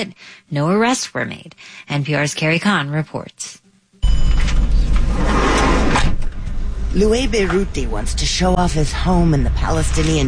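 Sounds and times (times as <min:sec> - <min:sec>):
speech: 0:00.0 - 0:04.4, 0:06.9 - 0:10.2
car engine driving up a winding hillside road near a Palestinian town: 0:04.4 - 0:10.2
car road noise on a winding hillside road: 0:04.6 - 0:10.2.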